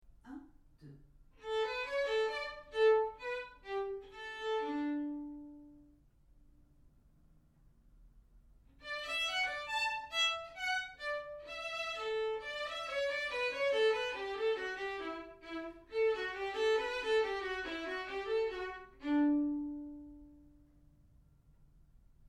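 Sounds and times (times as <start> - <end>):
solo violin: 1.4 - 6.0, 8.8 - 20.7.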